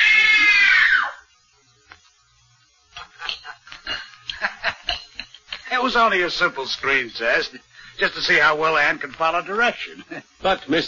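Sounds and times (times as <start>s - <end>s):
woman screaming in terror during a screen test: 0.0s - 1.2s
speech: 5.9s - 10.8s.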